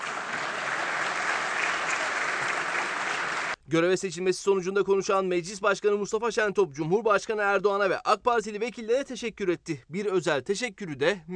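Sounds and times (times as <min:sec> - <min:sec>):
dense applause from a large assembly in parliament: 0:00.0 - 0:03.6
speech: 0:03.7 - 0:11.3.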